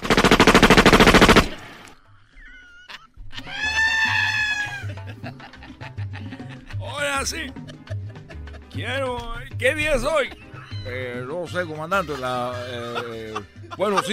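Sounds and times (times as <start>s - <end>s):
loud rapid machine-gun-like gunfire sound effect burst: 0.0s - 1.8s
laughter: 2.1s - 9.4s, 10.1s - 14.1s
speech: 7.2s - 7.7s, 8.8s - 14.1s.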